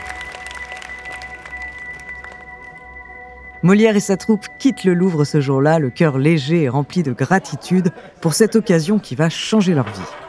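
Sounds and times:
royal court applauding: 0.0 - 3.2
speech: 3.6 - 10.2
laughter: 6.8 - 10.2.

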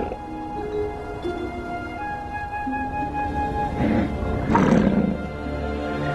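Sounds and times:
sustained musical tones: 0.0 - 6.1
mother muskox giving rough snorting grunts while charging an Arctic fox: 3.8 - 5.2.

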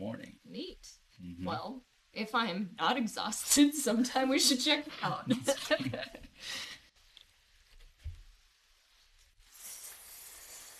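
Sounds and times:
speech: 0.1 - 6.7
person sipping fizzy sparkling water in a car: 9.4 - 10.7.

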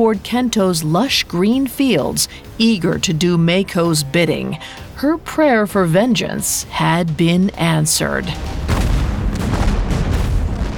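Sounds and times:
speech: 0.0 - 8.6
cannon fire barrage: 8.4 - 10.7.

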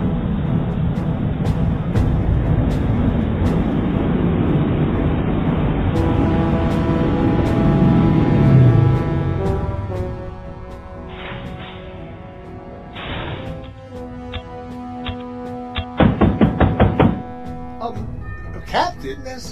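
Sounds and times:
steady tonal musical background: 0.0 - 19.5
knocking on a door: 15.8 - 17.2.

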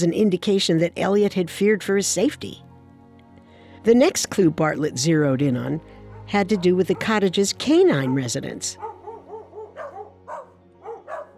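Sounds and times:
speech: 0.0 - 2.7, 3.8 - 9.0
dog barking in short yappy bursts: 6.1 - 7.3, 7.9 - 11.3.

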